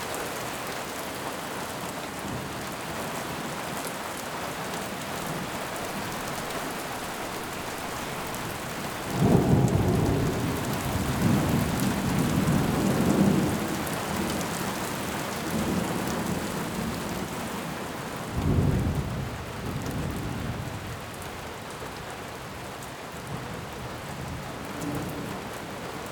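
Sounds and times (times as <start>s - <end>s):
heavy rain: 0.0s - 26.1s
low rumbling thunder: 5.2s - 17.0s.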